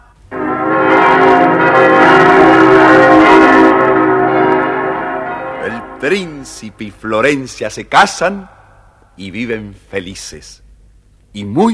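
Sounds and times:
bells ringing to celebrate a prince's wedding: 0:00.3 - 0:06.8
trumpets: 0:00.3 - 0:06.8
speech: 0:06.0 - 0:08.6, 0:09.2 - 0:10.6, 0:11.3 - 0:11.7.

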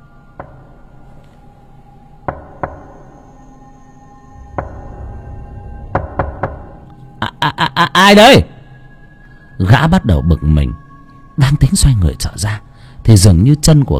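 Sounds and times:
knocking on a door from outside, heard from within a house: 0:00.4 - 0:00.7, 0:02.3 - 0:03.0, 0:04.6 - 0:05.0, 0:05.9 - 0:06.8
speech: 0:07.6 - 0:08.5, 0:09.6 - 0:10.8, 0:11.4 - 0:13.9.

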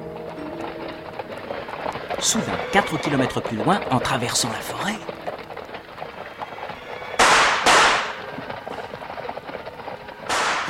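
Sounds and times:
speech: 0:02.2 - 0:05.2
gunshots fired at someone in a forest: 0:07.2 - 0:08.3, 0:10.3 - 0:10.6.

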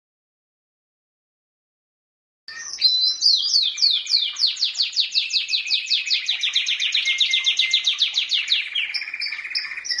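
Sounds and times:
champion singing canary: 0:02.5 - 0:09.9.

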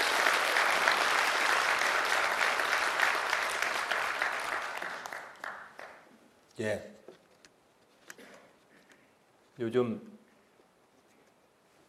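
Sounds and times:
audience applause at a political speech in a city hall: 0:00.0 - 0:06.1
speech: 0:06.6 - 0:07.0, 0:09.6 - 0:10.1.

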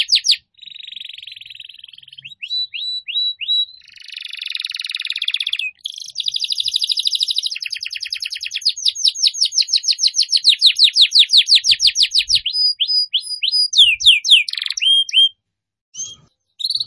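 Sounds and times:
canary singing trills and swept whistles: 0:00.0 - 0:15.4, 0:16.0 - 0:16.8.

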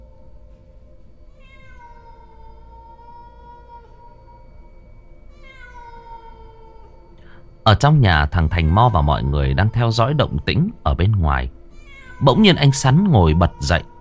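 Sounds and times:
cat meowing at night: 0:01.3 - 0:04.5, 0:05.3 - 0:07.0, 0:08.2 - 0:13.9
speech: 0:07.7 - 0:11.6, 0:12.2 - 0:13.9.

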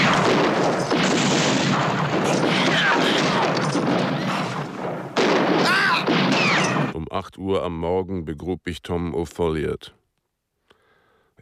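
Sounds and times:
dense roaring booming noise of a shootout: 0:00.0 - 0:07.0
gunshot fired at close range into a man's back: 0:00.0 - 0:07.0
speech: 0:07.4 - 0:10.0.

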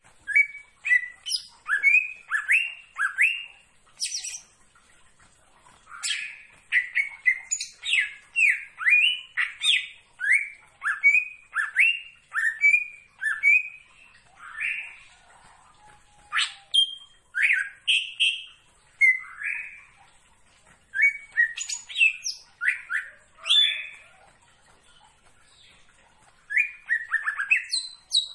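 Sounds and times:
leafbird singing vigorously: 0:00.0 - 0:28.3.

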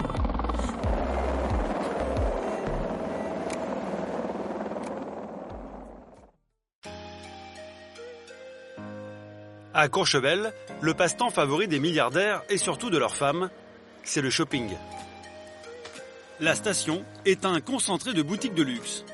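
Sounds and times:
helicopter arriving at a mountain ski resort: 0:00.0 - 0:06.3
speech: 0:09.8 - 0:15.0, 0:16.4 - 0:19.1.

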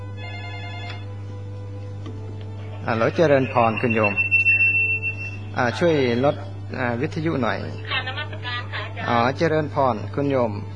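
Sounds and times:
telephone ringing with an incoming call to a radio phone-in program: 0:00.2 - 0:01.1, 0:03.0 - 0:05.4
speech: 0:02.8 - 0:04.3, 0:05.6 - 0:08.0, 0:09.0 - 0:10.7.

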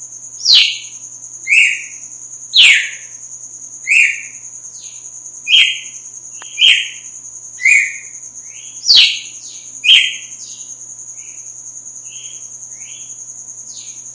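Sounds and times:
female red-cowled cardinal chirping loudly: 0:00.4 - 0:00.9, 0:02.6 - 0:03.0, 0:03.9 - 0:07.0, 0:07.6 - 0:11.4.

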